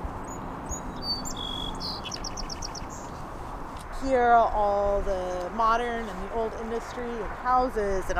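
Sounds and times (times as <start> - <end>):
song sparrow singing: 0.2 - 3.2
speech: 4.0 - 8.1.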